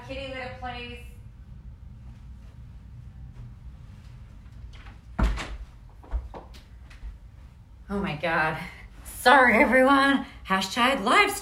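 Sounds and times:
low steady hum: 0.0 - 11.4
speech: 0.1 - 1.2, 7.9 - 11.4
door shutting thud: 4.8 - 6.5.

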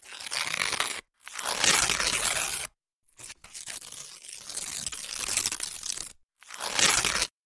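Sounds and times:
paper being crumpled and torn by hand: 0.0 - 7.4.

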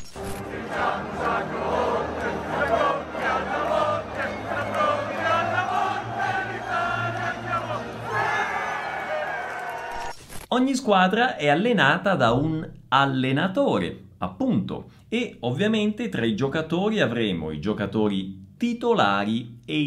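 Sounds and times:
football fans cheering in stadium stands: 0.3 - 10.2
speech: 10.6 - 19.8.

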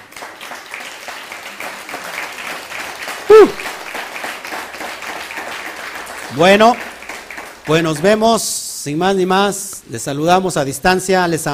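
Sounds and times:
crowd applauding: 0.0 - 8.5
speech: 3.3 - 3.7, 6.4 - 6.9, 7.7 - 11.5.

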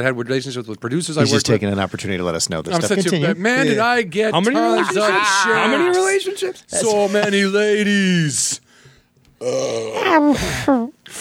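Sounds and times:
speech: 0.0 - 8.6, 9.4 - 11.2
laughter: 2.6 - 8.6
long drawn-out burp: 9.4 - 10.1.

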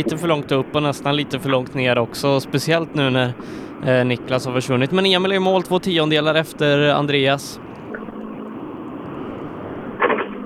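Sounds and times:
speech: 0.0 - 7.6
steady broadband hiss: 0.0 - 10.4
tonal engine roar: 3.7 - 10.4.

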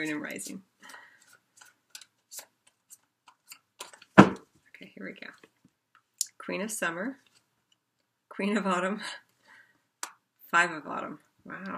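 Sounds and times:
speech: 0.0 - 1.0, 5.0 - 5.5, 6.4 - 7.2, 8.4 - 9.2, 10.5 - 11.7
tarot cards being shuffled: 0.0 - 4.4.

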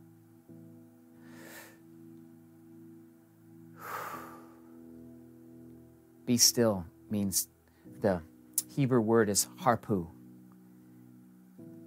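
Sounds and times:
slow deep breaths taken during a prayer: 1.2 - 1.9, 3.8 - 4.8
speech: 6.3 - 10.2.

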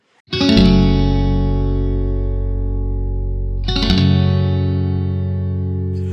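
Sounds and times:
heavily effected electric guitar chords: 0.3 - 6.1.

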